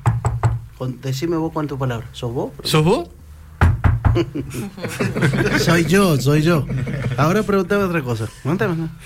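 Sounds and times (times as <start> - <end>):
knocks on a hard surface in a knock-code exchange: 0.0 - 0.6, 3.6 - 4.2
speech: 0.8 - 3.2, 4.2 - 9.0
laughter: 4.2 - 8.0.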